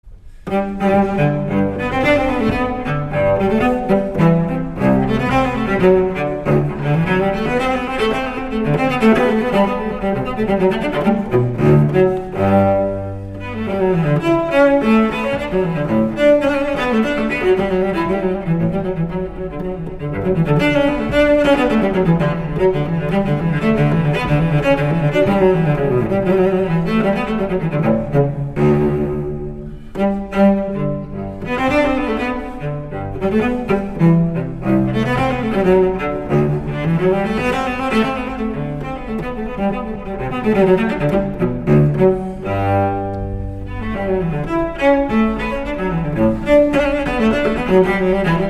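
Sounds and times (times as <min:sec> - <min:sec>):
cello piece, courante: 0:00.0 - 0:48.4.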